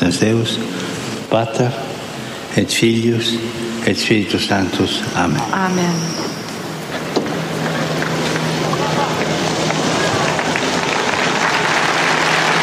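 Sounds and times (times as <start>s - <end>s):
speech: 0.0s - 1.9s, 2.6s - 6.4s
pilgrims applauding after a blessing: 7.5s - 12.6s
scattered voices and cheers: 8.4s - 12.6s.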